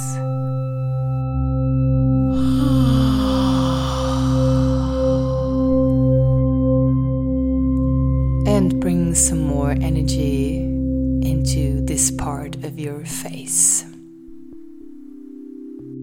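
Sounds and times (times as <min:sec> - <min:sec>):
soft musical drone: 0:00.0 - 0:12.5
person yawning: 0:02.2 - 0:06.2
speech: 0:09.2 - 0:09.4, 0:12.7 - 0:13.9.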